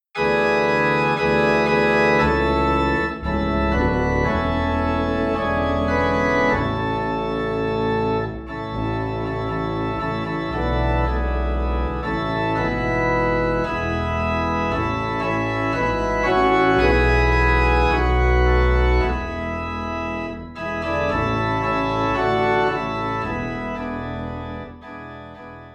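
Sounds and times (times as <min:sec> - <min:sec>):
low organ note in A: 0:00.2 - 0:25.7.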